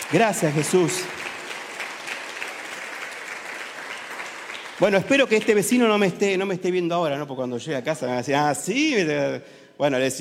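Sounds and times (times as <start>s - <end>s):
audience applauding: 0.0s - 6.2s
speech: 0.1s - 1.2s, 4.8s - 10.1s.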